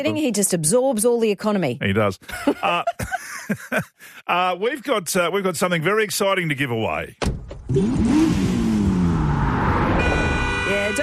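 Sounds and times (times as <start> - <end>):
speech: 0.0 - 8.5
laughter: 2.2 - 4.2
loud engine revving and whining: 7.6 - 10.9
car horn blaring: 10.0 - 11.0.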